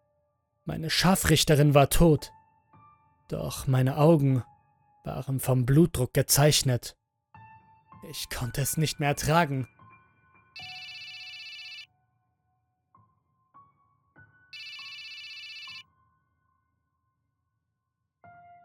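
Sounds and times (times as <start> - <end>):
speech: 0.7 - 2.4, 3.3 - 7.0, 8.0 - 9.8
telephone ringing in bright electronic bursts: 10.6 - 11.9, 14.6 - 15.8.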